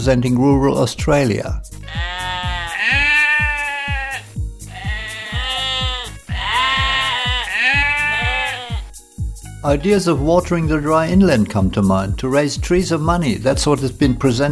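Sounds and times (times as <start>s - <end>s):
speech: 0.0s - 2.2s, 9.6s - 14.5s
low thumping beat: 1.5s - 14.5s
sheep bleating: 1.8s - 9.0s.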